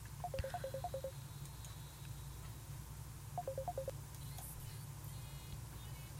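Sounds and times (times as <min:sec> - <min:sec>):
low steady hum: 0:00.0 - 0:06.1
telephone call tones while a caller is put through: 0:00.2 - 0:01.1, 0:03.4 - 0:03.9.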